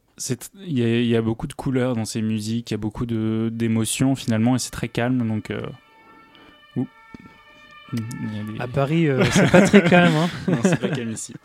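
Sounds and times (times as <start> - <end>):
speech: 0.2 - 5.8, 6.8 - 7.3, 7.9 - 11.4
faint ambulance or police car siren outside in Paris: 3.1 - 11.2
laughter: 9.0 - 11.4.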